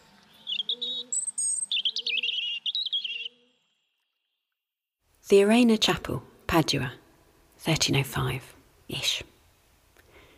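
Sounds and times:
robins singing: 0.2 - 3.7
speech: 5.3 - 7.0, 7.6 - 9.2.

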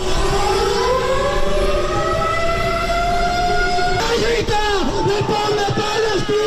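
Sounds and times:
wailing air-raid sirens from a simulated bombing: 0.0 - 6.4
large crowd chanting and shouting at a street protest in Palma: 3.9 - 6.4.

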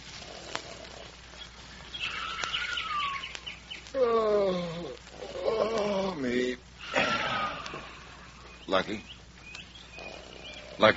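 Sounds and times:
birds twittering and chirping at dawn: 0.0 - 10.9
soft hiss: 0.0 - 10.9
speech: 8.7 - 9.1, 10.8 - 10.9.

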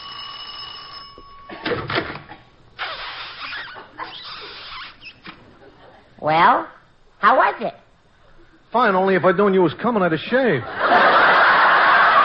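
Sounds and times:
doorbell ringing with a buzzing tone: 0.0 - 1.7
speech: 6.2 - 7.8, 8.7 - 10.8
laughter: 10.6 - 12.2.

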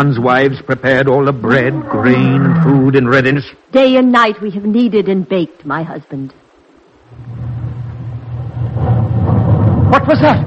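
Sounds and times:
speech: 0.0 - 6.4, 9.9 - 10.4
deep distant rumble of thunder: 7.2 - 10.4.

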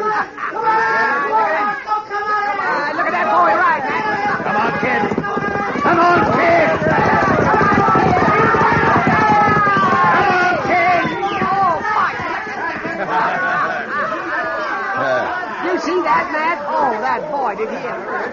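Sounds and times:
laughter: 0.0 - 1.5, 11.0 - 16.3
dense crowd of many voices shouting and chattering: 0.0 - 18.3
quarter horse colt and thoroughbred galloping in a race: 2.6 - 14.9.

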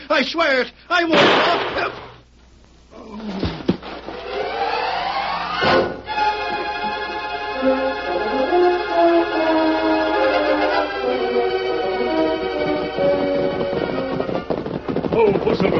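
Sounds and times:
speech: 0.1 - 2.1
gunshot: 1.1 - 2.2
dramatic music: 4.0 - 15.7.

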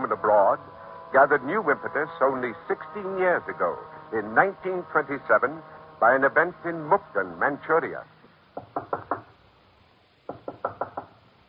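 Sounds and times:
speech: 0.1 - 8.1
knocking on a wooden door in Mukden, Manchuria: 8.6 - 9.3, 10.3 - 11.2.

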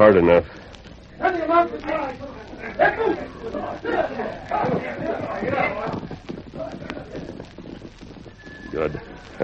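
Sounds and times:
speech: 0.0 - 0.6, 1.2 - 7.6, 8.7 - 9.4
horses' hooves clip-clopping at a quick pace: 0.0 - 9.4.

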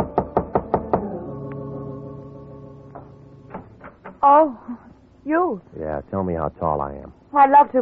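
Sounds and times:
knocking on a bungalow door: 0.0 - 1.1, 3.0 - 4.2
lingering resonant hum: 0.0 - 4.6
speech: 4.2 - 7.7.

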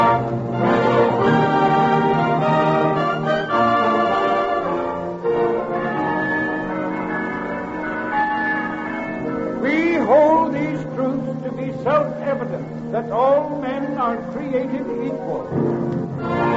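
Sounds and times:
dense wash of music: 0.0 - 16.5
bells ringing in a radio program opening: 5.6 - 16.5.

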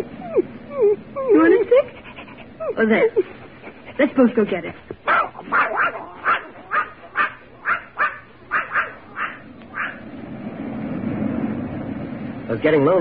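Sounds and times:
low rumbling noise: 0.0 - 12.9
speech: 2.7 - 3.4, 4.0 - 5.6, 12.5 - 12.9
dog barking in sharp yaps: 5.0 - 10.0.

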